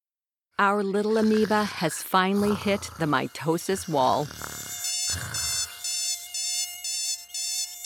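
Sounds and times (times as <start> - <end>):
speech: 0.6 - 5.2
alarm clock buzzing: 2.6 - 7.8.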